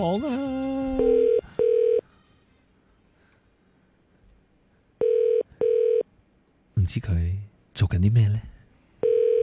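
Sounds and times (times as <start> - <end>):
speech: 0.0 - 1.1, 6.9 - 8.5
telephone ringback double rings of an outgoing call: 1.0 - 2.0, 5.0 - 6.0.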